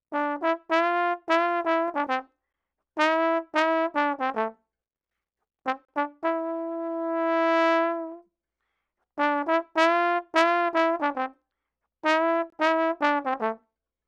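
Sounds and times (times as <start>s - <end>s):
trombone playing Latin jazz in C major: 0.1s - 2.2s, 3.0s - 4.5s, 5.7s - 8.2s, 9.2s - 11.3s, 12.0s - 13.6s.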